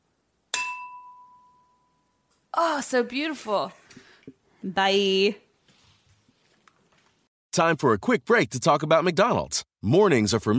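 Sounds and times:
box cutter striking a wine glass: 0.5 - 1.8
wine glass ringing: 0.5 - 2.4
speech: 2.6 - 5.4, 7.6 - 10.5.

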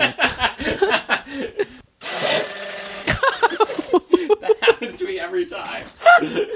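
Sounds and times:
people laughing: 0.0 - 1.8, 3.0 - 5.4, 6.0 - 6.5
blender whirring while making a milkshake: 2.0 - 3.9
people talking: 4.4 - 6.4.

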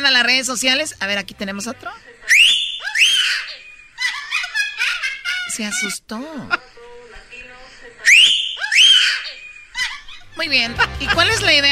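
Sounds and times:
faint noise: 0.0 - 11.6
speech: 0.1 - 2.5, 5.6 - 6.6, 10.4 - 11.6
person giving loud sharp swooping whistles: 2.3 - 3.8, 8.1 - 9.7.

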